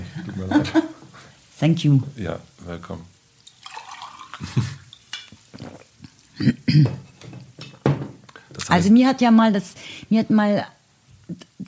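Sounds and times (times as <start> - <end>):
laughter: 0.0 - 1.0
speech: 0.3 - 1.0, 1.6 - 3.1, 4.4 - 4.8, 6.4 - 7.1, 8.7 - 11.6
water splashing and trickling into a glass: 3.4 - 5.1
light clinks of glassware: 3.6 - 5.4.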